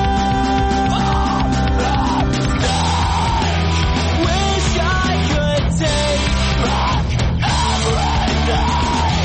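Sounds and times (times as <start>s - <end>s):
loud rock band with distorted guitars and pounding drums: 0.0s - 9.2s
harsh screamed vocals in post-hardcore emo song: 0.1s - 3.9s, 6.4s - 9.2s.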